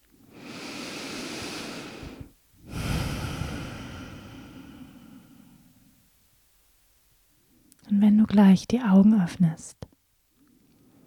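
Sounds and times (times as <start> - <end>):
deep breathing: 0.2 - 6.1
speech: 8.0 - 9.9.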